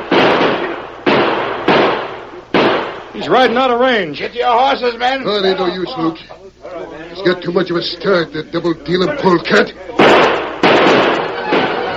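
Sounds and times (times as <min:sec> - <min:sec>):
gunshots fired at a fleeing rider: 0:00.0 - 0:03.6, 0:10.0 - 0:11.9
speech: 0:03.2 - 0:10.3.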